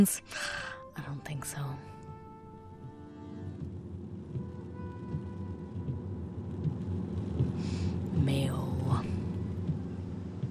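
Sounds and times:
speech: 0.0s - 1.9s, 7.6s - 9.1s
constant outdoor rainfall in a storm: 2.8s - 10.5s
rumbling storm wind gusts outdoors: 3.1s - 10.5s.

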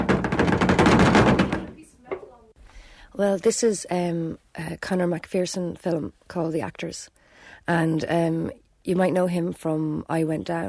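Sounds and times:
rapid rattling clatter made with a suitcase and a car door for a messy van interior: 0.0s - 1.7s
quiet knocks: 0.0s - 2.3s
speech: 3.2s - 10.6s.

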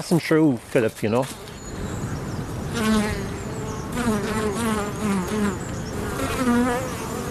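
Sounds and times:
speech: 0.0s - 1.5s, 2.7s - 3.2s
native Irish bees buzzing around a tree: 1.4s - 7.2s.

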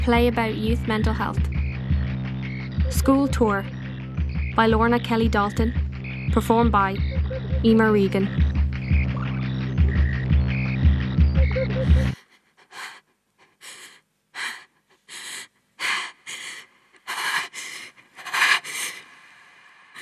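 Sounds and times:
speech: 0.0s - 1.6s, 2.9s - 3.8s, 4.6s - 8.5s
music: 0.0s - 12.2s
heavy anxious gasping breathing: 11.6s - 20.0s.

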